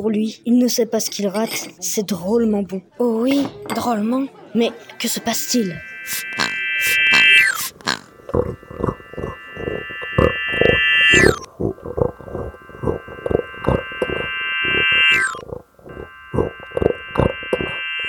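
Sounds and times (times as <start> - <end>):
speech: 0.0 - 7.1, 8.3 - 9.9, 11.6 - 13.0
steady humming tone: 4.7 - 18.0
pigs squealing: 5.0 - 18.0
pigs grunting: 5.7 - 14.3.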